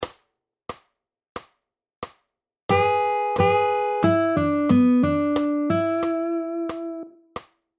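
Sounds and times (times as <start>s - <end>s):
pentatonic riffs: 2.7s - 7.1s.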